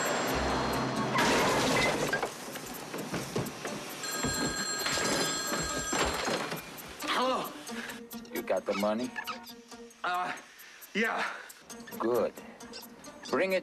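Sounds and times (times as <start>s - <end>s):
station wagon crashing into a yard planter: 0.0s - 6.8s
telephone ringing: 4.0s - 6.9s
speech: 8.6s - 9.3s, 10.0s - 11.4s, 12.0s - 12.4s, 13.3s - 13.6s.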